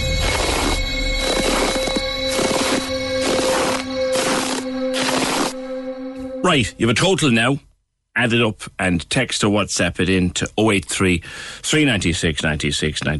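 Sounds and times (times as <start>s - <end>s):
footsteps crunching in snow: 0.1s - 5.7s
speech: 6.5s - 13.1s.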